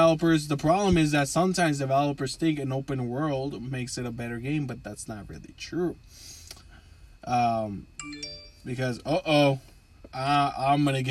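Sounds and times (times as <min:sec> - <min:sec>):
speech: 0:00.1 - 0:06.3, 0:07.2 - 0:11.0
mobile phone ringing with a short electronic chime: 0:08.0 - 0:08.8.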